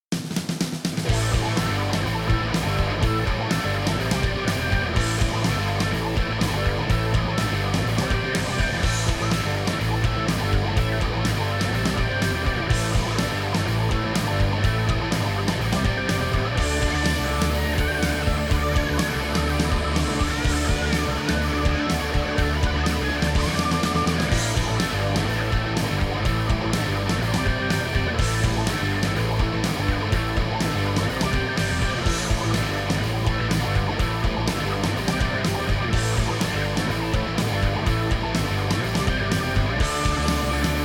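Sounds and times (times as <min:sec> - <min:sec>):
rock organ: 0:00.1 - 0:40.8.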